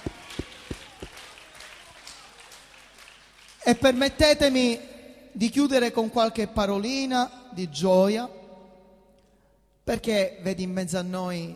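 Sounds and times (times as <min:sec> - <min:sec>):
church audience applauding: 0:00.0 - 0:04.2
speech: 0:03.7 - 0:08.4, 0:09.9 - 0:11.5.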